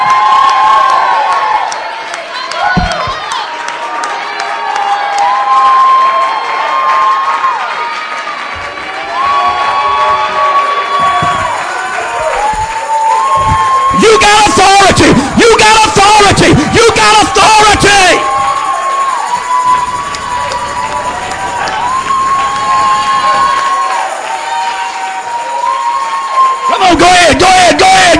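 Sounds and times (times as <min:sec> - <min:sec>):
large crowd shouting and screaming: 0:00.0 - 0:28.1.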